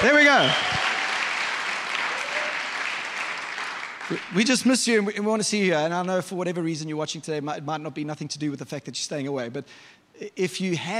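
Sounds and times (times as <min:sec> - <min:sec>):
speech: 0:00.0 - 0:00.8, 0:04.1 - 0:10.9
audience cheering and clapping: 0:00.0 - 0:04.5.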